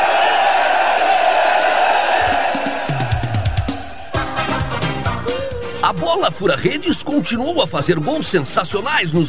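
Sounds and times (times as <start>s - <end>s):
big crowd cheering at a football stadium: 0.0s - 9.2s
rhythmic sounds: 2.3s - 9.2s
speech: 6.1s - 9.2s.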